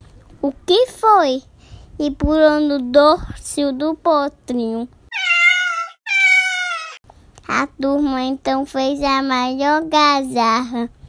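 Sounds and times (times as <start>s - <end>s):
speech: 0.4s - 5.0s, 7.6s - 11.0s
cat meowing: 5.1s - 7.0s.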